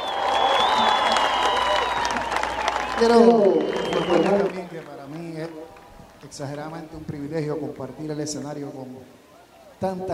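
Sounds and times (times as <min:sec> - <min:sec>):
audience applause at a stage show: 0:00.0 - 0:06.6
speech: 0:03.0 - 0:09.2, 0:09.8 - 0:10.1.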